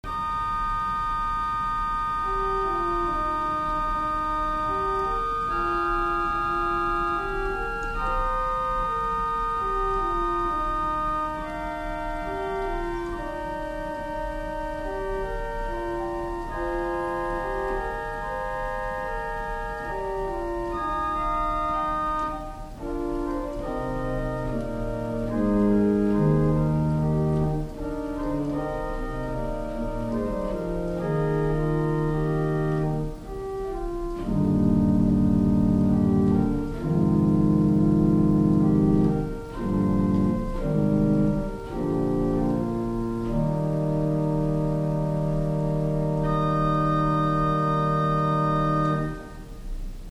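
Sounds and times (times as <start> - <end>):
organ: 0.0 - 50.1.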